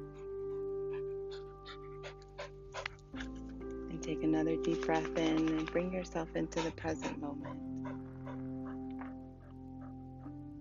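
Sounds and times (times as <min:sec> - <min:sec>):
dog panting: 0:00.1 - 0:10.0
speech: 0:04.1 - 0:07.7.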